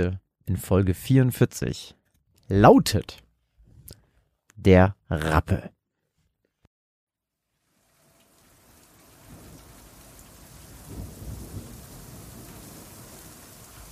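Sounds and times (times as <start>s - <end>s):
speech: 0.0s - 3.2s, 4.6s - 5.8s
steady dense rain: 7.5s - 13.8s
low thunder rumble: 9.2s - 13.8s.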